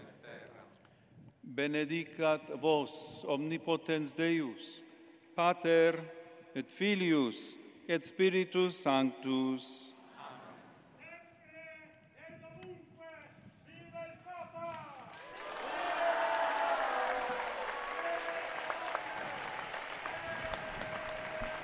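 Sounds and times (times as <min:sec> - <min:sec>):
speech: 0:01.6 - 0:04.8, 0:05.4 - 0:09.9
large crowd applauding: 0:14.7 - 0:21.6.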